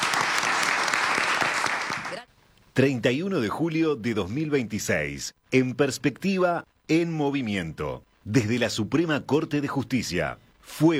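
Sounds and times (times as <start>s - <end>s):
audience applauding: 0.0s - 2.3s
speech: 2.8s - 10.9s.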